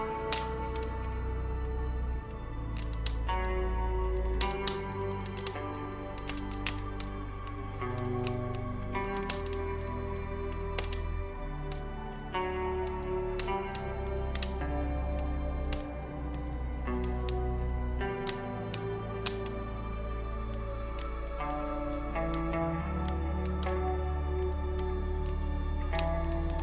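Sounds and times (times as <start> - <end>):
crackling fireplace: 0.0 - 26.6
soft relaxing music: 0.0 - 26.6.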